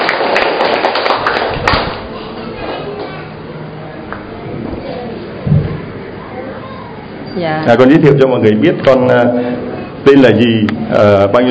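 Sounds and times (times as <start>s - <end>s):
audience applause: 0.0s - 3.2s
room murmur: 1.5s - 11.4s
speech: 7.4s - 11.4s.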